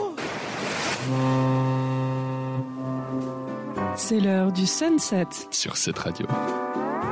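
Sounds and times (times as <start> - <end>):
surf from the sea: 0.2 - 3.4
ship's foghorn blast: 1.0 - 4.0
speech: 4.1 - 7.1.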